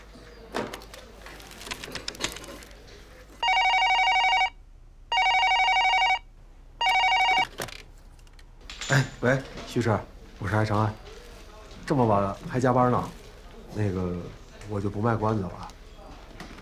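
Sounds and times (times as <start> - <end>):
rustling: 0.2 - 3.5, 7.3 - 16.6
buzzy electronic telephone ringback tone: 3.4 - 7.5
speech: 9.0 - 11.0, 11.9 - 15.6.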